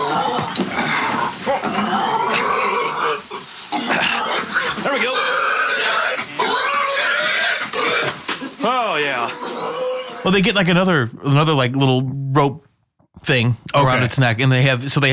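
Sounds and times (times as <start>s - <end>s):
pig grunting and squealing as it is nudged out: 0.0s - 10.4s
speech: 10.2s - 15.1s.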